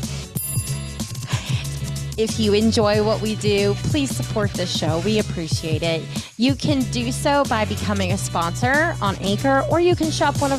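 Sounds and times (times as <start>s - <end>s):
bright ringing notification bell sound effect: 0.4s - 1.4s
speech: 2.2s - 10.5s.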